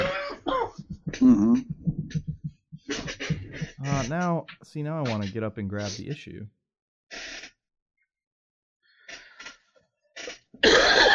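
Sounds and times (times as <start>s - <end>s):
speech: 1.2s - 1.7s, 4.0s - 6.6s
person coughing in short harsh bursts: 10.6s - 11.1s.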